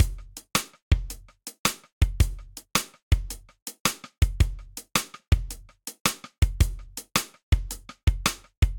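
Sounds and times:
tight drum groove with rolling sidestick triplets: 0.0 - 8.7.

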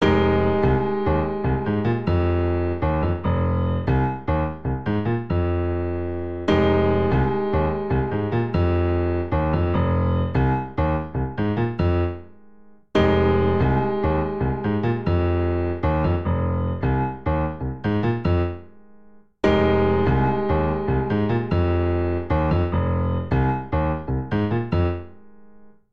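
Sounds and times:
jazz funk vamp on grand piano in F minor: 0.0 - 12.3, 13.0 - 18.7, 19.4 - 25.2.

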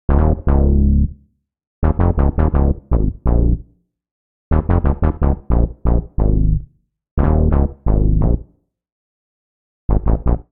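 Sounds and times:
bassline in B flat minor: 0.1 - 1.2, 1.8 - 3.8, 4.5 - 8.6, 9.9 - 10.4.

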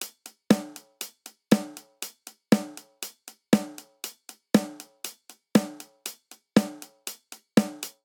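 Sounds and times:
classic rock hi-hat: 0.0 - 8.0
classic rock snare drum: 0.0 - 8.0.

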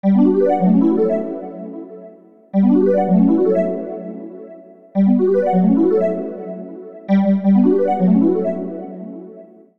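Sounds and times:
melodic MIDI clip in B minor: 0.0 - 9.6.

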